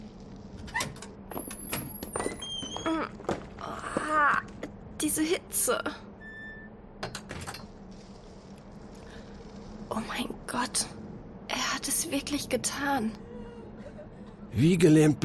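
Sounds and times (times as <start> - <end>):
low steady hum: 0.0 - 15.2
door creaking slowly open with a groaning squeal: 0.6 - 3.5
speech: 5.0 - 6.0, 12.2 - 13.3, 14.5 - 15.2.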